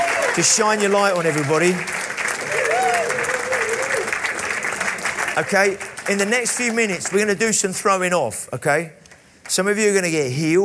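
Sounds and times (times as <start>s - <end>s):
large crowd applauding: 0.0s - 7.8s
speech: 0.4s - 2.0s, 5.4s - 10.6s
person whooping: 2.5s - 4.1s.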